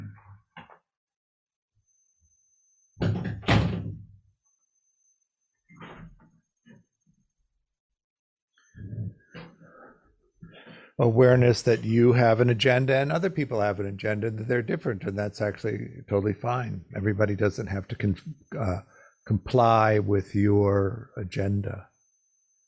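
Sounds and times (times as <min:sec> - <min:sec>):
door pushed shut with a loud thud and rattle: 0:03.0 - 0:04.2
speech: 0:11.0 - 0:21.9.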